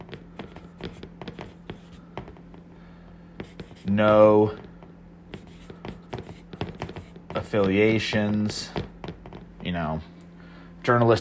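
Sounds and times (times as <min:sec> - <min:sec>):
pen scratching on paper writing a word by hand: 0:00.0 - 0:02.4, 0:03.4 - 0:04.7, 0:05.3 - 0:07.5
speech: 0:03.9 - 0:04.6, 0:07.5 - 0:08.8, 0:09.7 - 0:10.1, 0:10.8 - 0:11.1.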